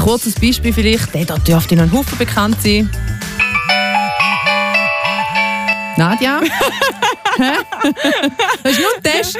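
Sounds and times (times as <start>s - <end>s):
speech: 0.0s - 3.4s, 6.0s - 9.3s
Nokia mobile phone electronic ringtone: 3.0s - 8.6s
laughter: 6.4s - 9.3s.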